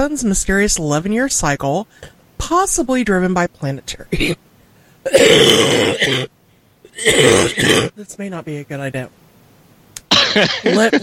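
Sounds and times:
speech: 0:00.0 - 0:04.4, 0:05.1 - 0:06.4, 0:07.0 - 0:09.2, 0:10.3 - 0:11.0
harsh coughing: 0:05.1 - 0:06.3, 0:06.9 - 0:07.9, 0:10.1 - 0:11.0.

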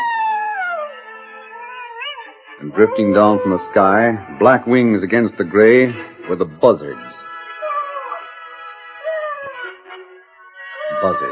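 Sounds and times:
coyote howling at dawn: 0:00.0 - 0:05.1, 0:07.4 - 0:11.3
speech: 0:02.6 - 0:07.3, 0:11.1 - 0:11.3.

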